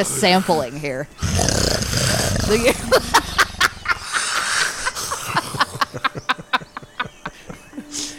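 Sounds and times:
speech: 0.0s - 3.2s
voice imitating loud guttural gorilla-like snoring: 1.2s - 4.7s
laughter: 2.4s - 8.1s.

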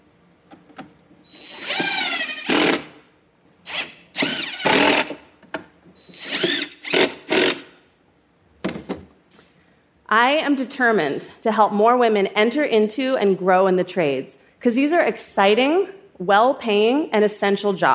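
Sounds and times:
power drill whirring: 1.3s - 2.9s, 3.6s - 5.2s, 6.1s - 7.7s
speech: 10.1s - 17.9s.

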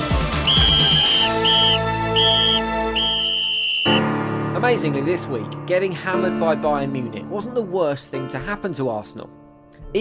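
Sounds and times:
several shrill whistles blowing: 0.3s - 4.0s
speech: 4.7s - 10.0s.

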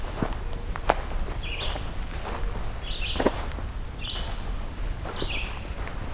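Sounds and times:
footsteps crunching: 0.0s - 6.1s
pine warbler singing short high phrases: 1.4s - 2.0s, 2.8s - 3.4s, 4.0s - 4.4s, 5.1s - 5.8s.

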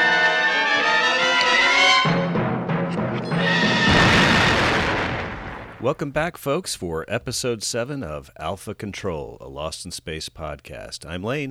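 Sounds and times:
tonal passage: 0.0s - 6.0s
blasting charges exploding: 2.2s - 6.1s
speech: 5.8s - 11.5s.

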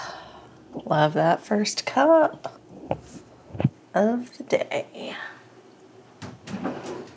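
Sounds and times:
speech: 0.9s - 2.6s, 4.0s - 5.3s
drawer sliding open: 6.4s - 7.1s.

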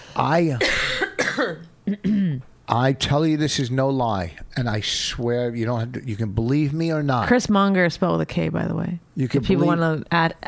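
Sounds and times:
speech: 0.2s - 10.4s
person coughing hard in rough throaty bursts: 0.4s - 2.4s.

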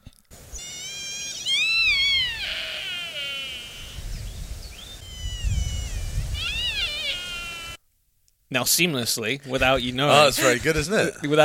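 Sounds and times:
sika deer stag giving high-pitched whistling screams: 0.4s - 7.8s
speech: 8.5s - 11.4s
laughter: 10.1s - 11.4s.

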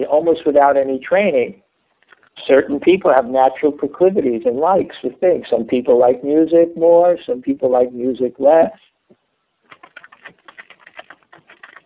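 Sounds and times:
speech: 0.0s - 1.6s, 2.4s - 8.9s
typing on a computer keyboard: 9.7s - 11.8s.

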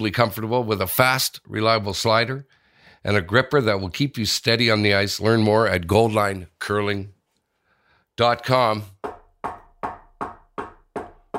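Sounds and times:
speech: 0.0s - 7.2s, 8.2s - 9.6s
firm knocks on a wooden door: 9.0s - 11.3s.

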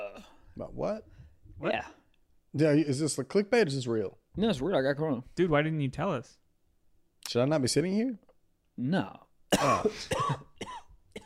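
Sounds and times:
speech: 0.6s - 6.4s, 7.2s - 8.2s, 8.8s - 10.5s
person coughing theatrically in an exaggerated fake cough: 9.5s - 11.2s.

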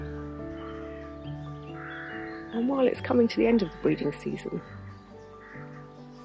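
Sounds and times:
chorus of rooks cawing in a rookery: 0.0s - 2.6s, 4.6s - 6.2s
speech: 2.5s - 4.8s.

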